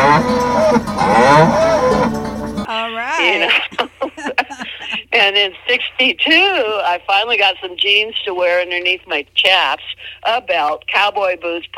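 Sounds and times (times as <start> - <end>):
Hereford cattle on a ranch mooing: 0.0 - 2.2
laughter: 3.2 - 5.2
speech: 5.4 - 11.7.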